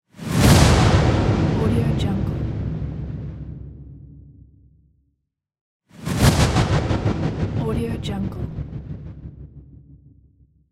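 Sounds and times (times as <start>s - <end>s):
cinematic logo reveal whoosh: 0.1s - 4.1s, 6.0s - 10.4s.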